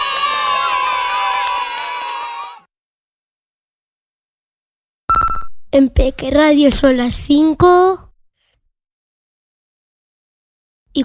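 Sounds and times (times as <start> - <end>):
applause: 0.0 - 2.7
children cheering and shouting: 0.0 - 2.7
speech: 5.7 - 8.0.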